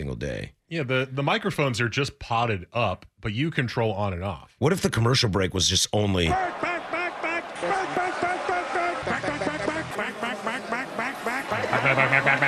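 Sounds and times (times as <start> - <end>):
speech: 0.0 - 6.7, 11.8 - 12.4
laughter: 6.3 - 12.4
flock of ducks quacking: 8.4 - 12.4.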